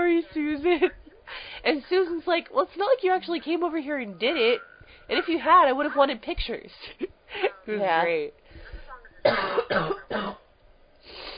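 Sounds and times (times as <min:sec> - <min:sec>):
speech: 0:00.2 - 0:08.4, 0:09.2 - 0:10.4
harsh coughs: 0:09.2 - 0:10.5.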